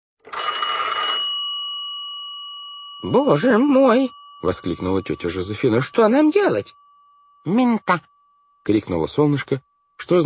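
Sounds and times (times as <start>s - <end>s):
telephone ringing in a hushed dining room: 0.3s - 5.2s
speech: 3.0s - 6.8s, 7.4s - 10.2s.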